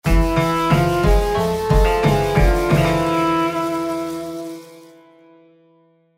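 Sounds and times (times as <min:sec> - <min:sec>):
Arabian-style eyecatch jingle: 0:00.1 - 0:05.0.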